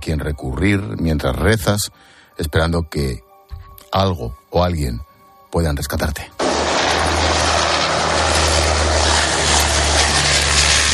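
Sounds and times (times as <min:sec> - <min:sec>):
speech: 0:00.1 - 0:03.3, 0:03.9 - 0:06.4
propeller aircraft flying over the sea: 0:06.4 - 0:10.9.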